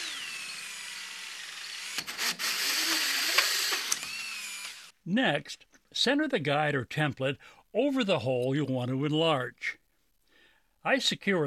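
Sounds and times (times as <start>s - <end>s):
hole saw grinding through scrap wood: 0.0s - 4.9s
power drill with a hole saw boring through scrap wood: 0.0s - 5.0s
speech: 5.1s - 9.8s, 10.8s - 11.4s.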